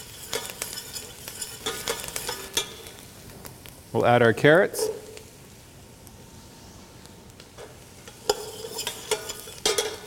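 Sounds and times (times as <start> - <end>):
utensil scraping and clicking while stirring onions: 0.0 - 2.8, 8.1 - 10.0
onions sizzling in a pot for minestrone soup: 0.0 - 10.0
speech: 3.9 - 4.9.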